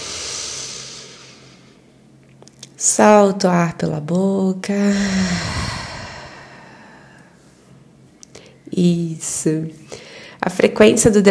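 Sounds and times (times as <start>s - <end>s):
deep inhale through the nose during a guided morning breathing exercise: 0.0s - 1.8s, 4.9s - 7.4s
speech: 2.8s - 5.6s, 8.8s - 11.2s.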